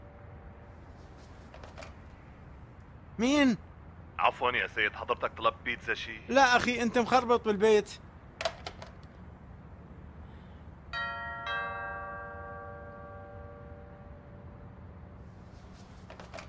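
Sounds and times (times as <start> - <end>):
speech: 3.2 - 8.0
doorbell chiming two clear notes: 11.0 - 13.9.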